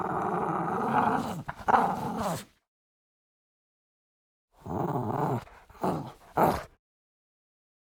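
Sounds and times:
French bulldog growling and snarling: 0.0 - 2.4, 4.6 - 6.8.

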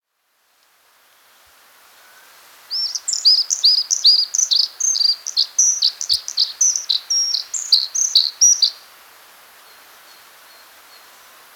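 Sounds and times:
blue-capped redstart singing: 2.7 - 8.8.

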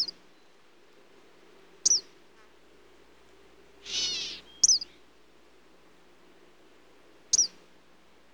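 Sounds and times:
Eastern kingbird uttering brief high sharp call notes: 3.8 - 4.8.

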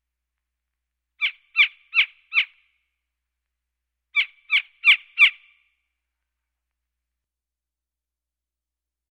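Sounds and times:
Gila woodpecker harsh yipping calls: 1.2 - 2.6, 4.2 - 5.6.

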